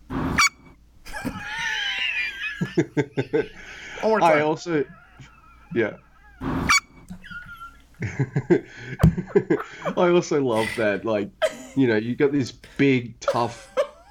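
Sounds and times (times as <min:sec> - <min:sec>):
small chihuahua dogs yapping: 0:00.2 - 0:02.6, 0:04.0 - 0:07.9
people laughing: 0:01.1 - 0:11.8, 0:13.2 - 0:14.0
speech: 0:02.8 - 0:05.0, 0:05.7 - 0:06.5, 0:08.0 - 0:13.8.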